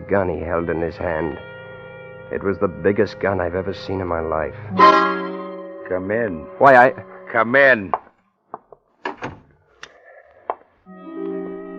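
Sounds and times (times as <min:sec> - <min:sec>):
speech: 0:00.1 - 0:01.5, 0:02.3 - 0:05.2, 0:05.9 - 0:08.0
door latch clicks: 0:08.6 - 0:10.6
man swinging a door shut: 0:09.0 - 0:10.7.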